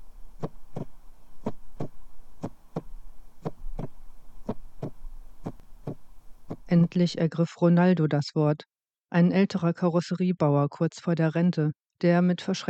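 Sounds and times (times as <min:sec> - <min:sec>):
heartbeat pounding in lub-dub pairs: 0:00.3 - 0:06.9
speech: 0:06.7 - 0:12.6.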